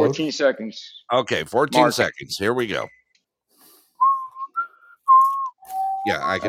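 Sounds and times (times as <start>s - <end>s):
speech: 0.1s - 3.0s, 6.0s - 6.4s
person whistling a short wavering off-tune tune: 4.0s - 6.4s.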